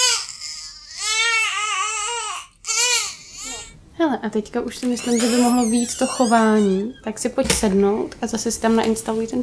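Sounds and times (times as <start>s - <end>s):
baby crying: 0.0s - 3.8s, 5.0s - 7.0s
speech: 4.0s - 9.4s.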